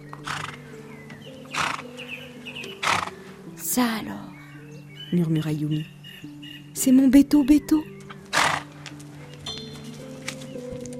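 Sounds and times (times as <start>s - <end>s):
old grey horse being led toward a road snorting and blowing: 0.2s - 0.6s, 1.5s - 1.8s, 2.8s - 3.2s, 8.3s - 8.8s
speech: 3.7s - 4.3s, 5.1s - 7.9s.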